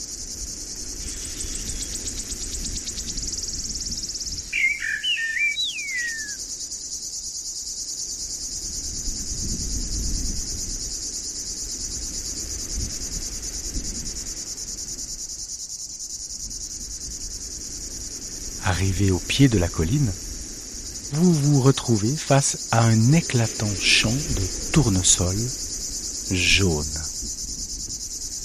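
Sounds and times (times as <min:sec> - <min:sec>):
crickets chirping in a dense high-pitched drone: 0:00.0 - 0:28.4
low rustle of wind: 0:00.0 - 0:28.4
brief warbling bird call: 0:04.5 - 0:06.4
speech: 0:18.8 - 0:20.2, 0:21.2 - 0:25.7, 0:26.3 - 0:27.0.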